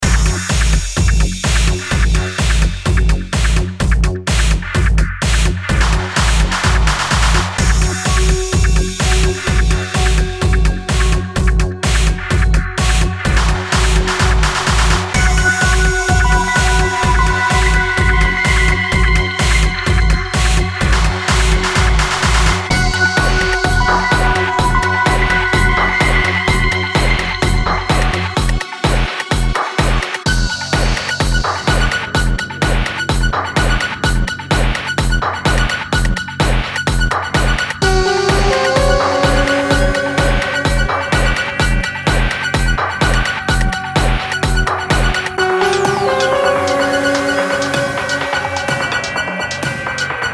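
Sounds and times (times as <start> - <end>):
industrial techno music: 0.0 - 50.3.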